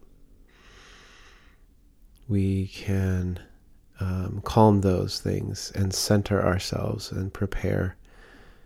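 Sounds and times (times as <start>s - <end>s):
low hum: 0.0s - 8.6s
slow deep breath: 0.4s - 1.7s, 8.1s - 8.6s
speech: 2.3s - 8.0s.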